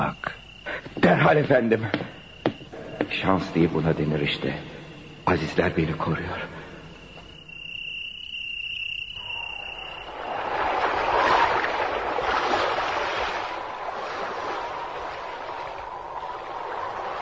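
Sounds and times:
wind aboard a ship sailing toward the Tunisian coast: 0:00.0 - 0:17.2
speech: 0:01.0 - 0:02.2, 0:03.1 - 0:06.6
sea waves aboard a ship sailing toward the Tunisian coast: 0:09.2 - 0:17.2.

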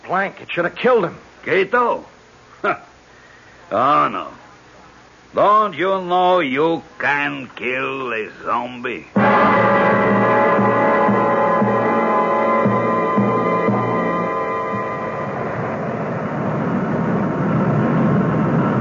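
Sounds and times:
speech: 0:00.1 - 0:02.9, 0:03.7 - 0:04.4, 0:05.3 - 0:09.8
aircraft engine drone while coming in to land: 0:09.2 - 0:18.7.

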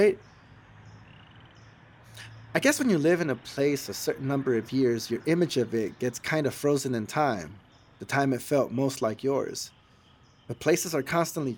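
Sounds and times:
speech: 0:00.0 - 0:00.3, 0:02.6 - 0:09.8, 0:10.5 - 0:11.5
western toad trilling: 0:01.0 - 0:02.4.

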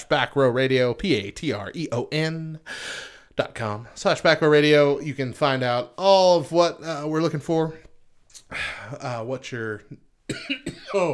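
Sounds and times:
speech: 0:00.1 - 0:07.8, 0:08.5 - 0:11.1
person clearing throat: 0:10.3 - 0:11.1
person coughing: 0:10.3 - 0:11.1.

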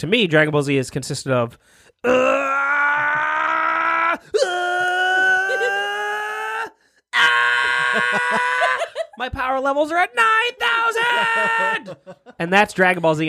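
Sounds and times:
speech: 0:00.0 - 0:02.7, 0:08.0 - 0:08.6, 0:09.2 - 0:13.2
voice imitating anime power-up screaming: 0:02.1 - 0:12.0.

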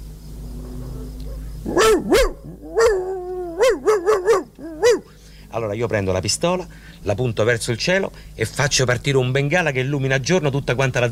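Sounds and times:
person imitating a barking dog: 0:01.0 - 0:05.1
speech: 0:05.0 - 0:11.0.

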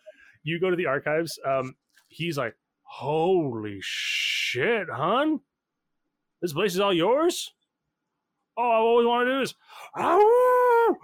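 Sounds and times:
speech: 0:00.4 - 0:05.5, 0:06.4 - 0:07.6, 0:08.6 - 0:11.0
person howling loudly: 0:09.9 - 0:11.0.

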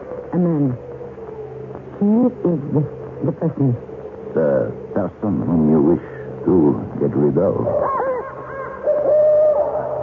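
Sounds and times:
faint low hum: 0:00.0 - 0:10.0
speech: 0:00.4 - 0:00.9, 0:02.0 - 0:08.0
owl hooting: 0:07.4 - 0:10.0.

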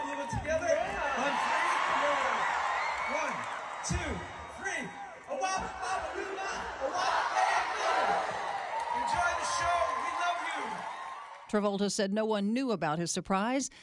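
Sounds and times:
large audience yelling together on cue: 0:00.7 - 0:11.4
speech: 0:03.9 - 0:04.9, 0:11.5 - 0:13.8.

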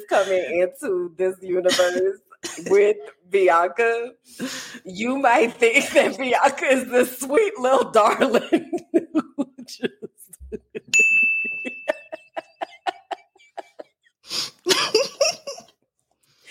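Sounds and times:
speech: 0:00.1 - 0:11.0
noisy cough-like sounds: 0:01.7 - 0:02.8
laughter: 0:08.2 - 0:14.0, 0:14.7 - 0:15.7
little bell ding: 0:10.9 - 0:12.2.

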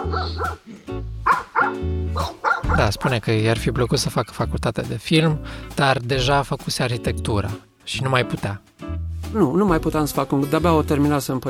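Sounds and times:
several dogs barking: 0:00.0 - 0:03.2
speech: 0:00.1 - 0:00.9, 0:01.7 - 0:11.4.

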